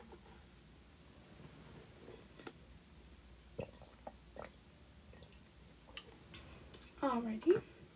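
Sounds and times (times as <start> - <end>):
person sipping water: 3.6 - 4.6
speech: 7.1 - 7.7.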